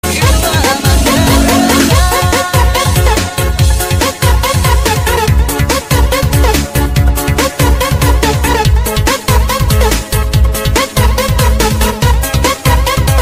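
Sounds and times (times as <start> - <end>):
breakbeat: 0.0 - 13.1.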